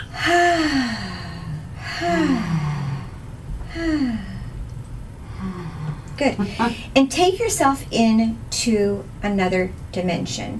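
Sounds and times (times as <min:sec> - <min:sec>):
person breathing deeply during a guided relaxation session: 0:00.0 - 0:04.6, 0:05.2 - 0:07.0
speech: 0:06.2 - 0:10.5.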